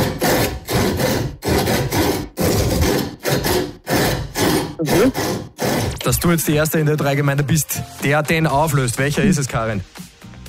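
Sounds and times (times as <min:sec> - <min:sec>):
handsaw rasping through wood in a rhythm of a pop song: 0:00.0 - 0:06.6
speech: 0:06.2 - 0:10.0.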